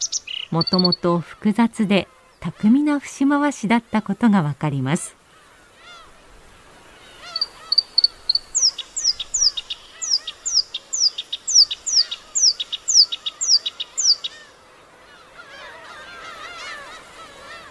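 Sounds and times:
softer bird calls: 0.0s - 2.9s, 5.2s - 17.6s
black-browed reed warbler singing: 0.0s - 4.4s, 7.0s - 14.5s
speech: 0.5s - 5.2s.

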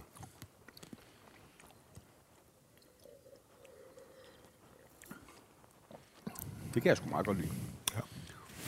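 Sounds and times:
wet chewing of strawberries: 0.0s - 6.5s
speech: 6.8s - 7.8s.

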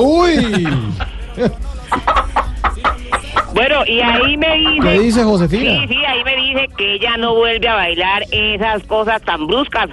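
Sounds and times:
speech: 0.0s - 2.2s, 3.6s - 9.9s
laughter: 0.2s - 5.3s
hen clucking: 1.9s - 7.0s.

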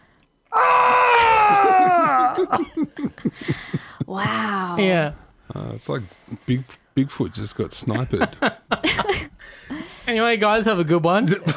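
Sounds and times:
person imitating a crying wail and sobbing: 0.6s - 4.8s
laughter: 1.4s - 4.4s, 8.0s - 9.3s
speech: 2.4s - 11.5s.

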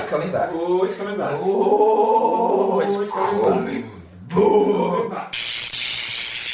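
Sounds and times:
speech: 0.2s - 5.6s
deathcore guttural growl vocals: 1.4s - 5.3s.

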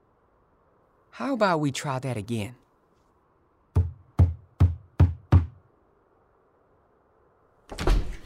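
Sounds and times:
speech: 1.2s - 2.6s
firm knocks on a house door by a door-to-door salesman: 3.7s - 5.6s.

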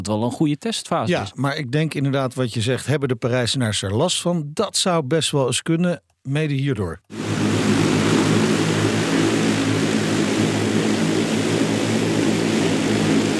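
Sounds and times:
speech: 0.0s - 7.5s
drone propeller buzz overhead: 7.1s - 13.3s
low rumbling hum: 7.1s - 13.3s.

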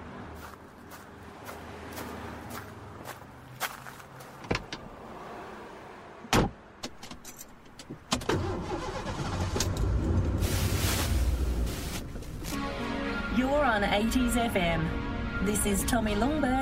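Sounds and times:
footsteps approaching a car: 0.4s - 4.8s, 10.4s - 12.7s
car engine starting and revving as the car pulls away: 8.1s - 12.5s
speech: 13.8s - 16.6s.

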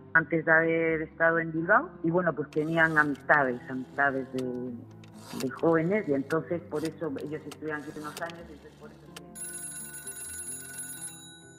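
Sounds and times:
speech: 0.2s - 9.1s
telephone ringing with a bright electronic tone: 8.9s - 11.5s.

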